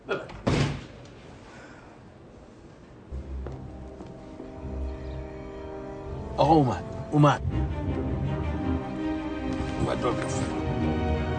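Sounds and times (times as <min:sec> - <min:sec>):
door slamming shut: 0:00.3 - 0:01.0
low rumbling background: 0:03.0 - 0:11.3
speech: 0:06.4 - 0:08.4, 0:09.9 - 0:11.0.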